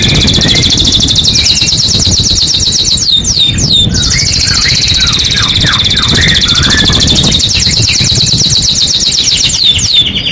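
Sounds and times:
domestic canary singing a rapid rolling high trill: 0.0 - 10.2
sharp canary chirps: 0.0 - 10.2.

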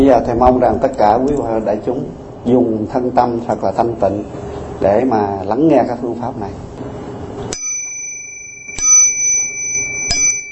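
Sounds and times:
speech: 0.1 - 6.7
small bell ringing at a Buddhist Dharma talk: 7.5 - 10.5.

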